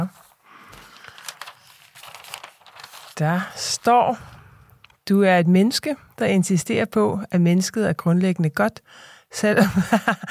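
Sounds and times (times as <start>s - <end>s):
sheet of paper rustling as it is turned over: 0.0s - 5.0s
crinkly paper bursts: 0.1s - 3.2s
speech: 3.2s - 4.3s, 5.1s - 10.2s.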